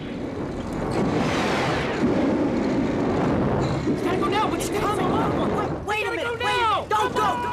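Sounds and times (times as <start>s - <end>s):
petrol pump spraying burning fuel with a roaring whoosh: 0.0s - 5.9s
people shouting: 6.4s - 7.5s.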